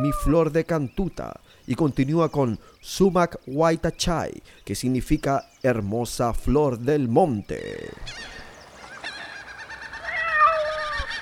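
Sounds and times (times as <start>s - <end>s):
angry seagulls squawking: 0.0s - 0.4s, 7.9s - 11.2s
speech: 0.0s - 8.4s.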